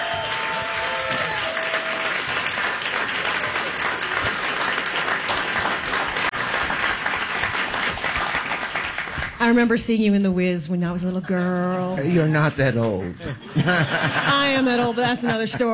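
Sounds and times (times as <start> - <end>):
audience applause welcoming a guest at a live talk event: 0.0 - 9.4
speech: 9.4 - 15.7
laughter: 11.3 - 15.7.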